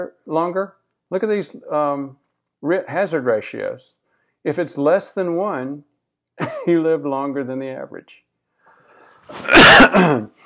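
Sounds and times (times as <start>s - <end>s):
speech: 0.0s - 8.2s, 9.3s - 10.4s
loud harsh cough: 9.3s - 10.4s.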